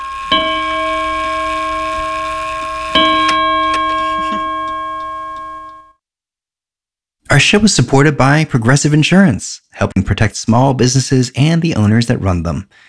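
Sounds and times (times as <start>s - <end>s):
clock chiming: 0.0s - 6.0s
speech: 7.4s - 12.8s.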